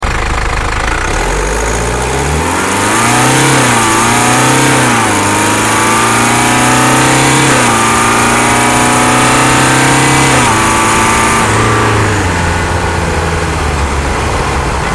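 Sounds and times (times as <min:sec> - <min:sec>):
320d car accelerating in Eco Pro mode: 0:00.0 - 0:14.9.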